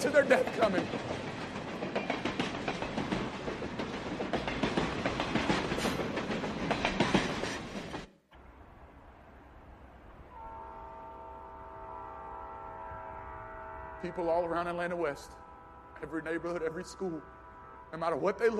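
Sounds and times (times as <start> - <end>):
speech: 0.0 - 1.2, 14.2 - 15.4, 16.0 - 18.5
train rumbling along the tracks: 0.0 - 18.5
faint sustained tone: 10.2 - 18.5.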